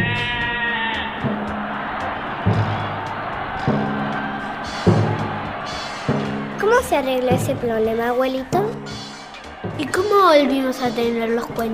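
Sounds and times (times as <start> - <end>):
several sheep bleating: 0.0 - 2.9
busy flock noise: 0.0 - 11.7
speech: 6.8 - 9.0, 9.8 - 11.7.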